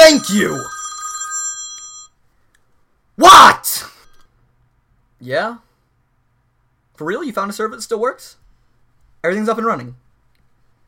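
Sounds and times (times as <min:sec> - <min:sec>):
telephone ringing with electronic trill: 0:00.0 - 0:02.2
speech: 0:00.1 - 0:00.8, 0:05.2 - 0:05.7, 0:07.0 - 0:08.4, 0:09.2 - 0:10.0.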